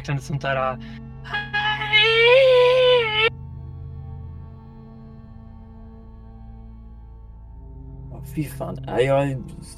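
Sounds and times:
speech: 0.0s - 2.7s, 8.4s - 9.7s
voice imitating a child crying after falling over: 1.3s - 3.3s.

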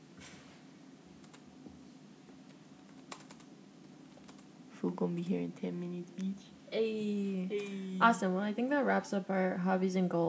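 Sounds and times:
steady low hum: 0.0s - 10.2s
typing on a computer keyboard at work: 1.2s - 1.4s, 2.9s - 3.5s, 4.2s - 4.5s
speech: 4.8s - 10.2s.

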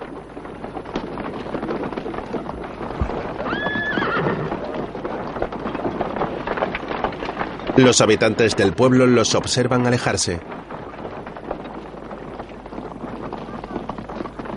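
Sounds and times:
horse hooves clip-clopping as horses are ridden away: 0.0s - 14.5s
horse whinnying: 3.0s - 5.0s
speech: 7.8s - 10.6s.

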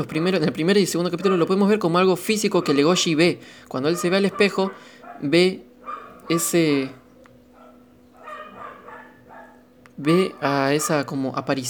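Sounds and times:
speech: 0.0s - 5.7s, 6.3s - 7.0s, 10.0s - 11.6s
steady low electrical hum: 0.0s - 11.6s
dog barking: 1.2s - 1.8s, 2.4s - 3.2s, 3.8s - 11.2s.

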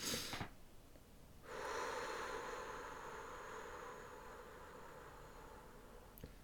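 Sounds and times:
long steady exhale in relaxation breathing: 1.4s - 6.4s
sharp intake of breath through the nose: 1.4s - 6.4s.

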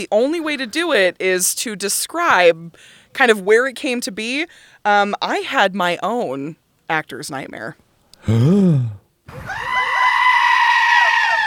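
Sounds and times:
speech: 0.0s - 9.7s
goat screaming: 9.4s - 11.4s.

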